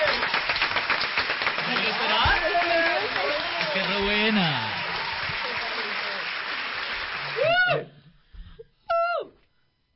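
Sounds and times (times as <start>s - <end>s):
large audience clapping at an awards ceremony: 0.0s - 7.8s
speech: 4.0s - 4.8s.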